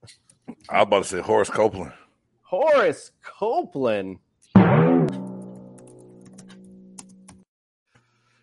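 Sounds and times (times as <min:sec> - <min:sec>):
speech: 0:00.0 - 0:04.2
rapid typing on a computer keyboard: 0:05.4 - 0:07.5.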